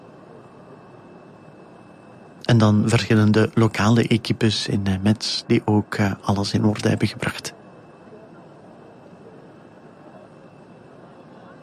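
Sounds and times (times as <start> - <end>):
airliner engines running on an airfield: 0.0 - 11.6
speech: 2.5 - 7.6.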